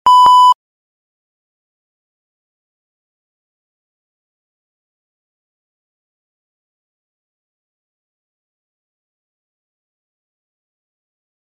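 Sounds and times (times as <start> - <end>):
i-mobile i-style Q1 beep: 0.0 - 0.6.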